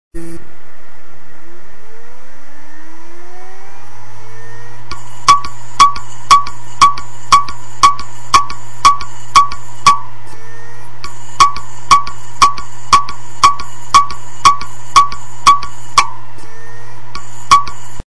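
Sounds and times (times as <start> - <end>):
damaged WD hard disk loud clicking: 4.9 - 10.1, 11.0 - 16.2, 17.1 - 18.0.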